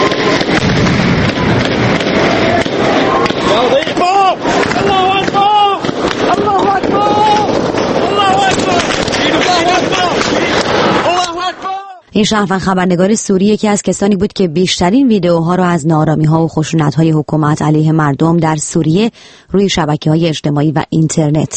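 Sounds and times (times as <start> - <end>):
gunfire bursts: 0.0 - 11.1
wind buffeting the microphone: 0.1 - 11.3
many people shouting and screaming in panic: 1.2 - 12.1
speech: 12.2 - 21.5.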